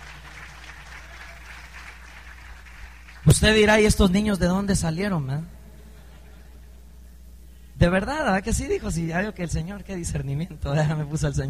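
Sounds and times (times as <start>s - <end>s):
church congregation applauding: 0.0s - 3.4s
low hum: 0.0s - 11.4s
speech: 3.2s - 5.6s, 7.8s - 11.4s.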